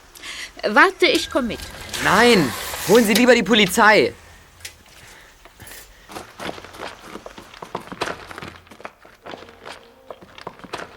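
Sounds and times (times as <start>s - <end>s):
speech: 0.6s - 4.2s
crunching footsteps walking into a cave: 4.6s - 10.9s.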